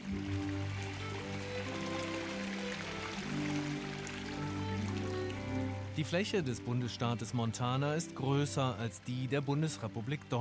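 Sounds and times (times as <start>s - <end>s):
mountain stream rushing: 0.0s - 10.4s
speech: 6.0s - 10.4s.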